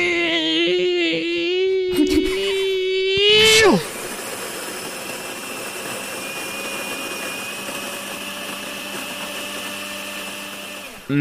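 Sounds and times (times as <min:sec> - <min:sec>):
voice imitating a coffee machine grinder: 0:00.0 - 0:11.1.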